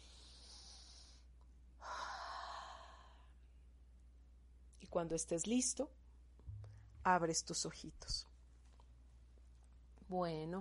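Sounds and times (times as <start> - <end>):
slow deep breath in through the nose and out: 0.0 - 3.4
speech: 4.8 - 6.0, 7.1 - 8.3, 10.1 - 10.5.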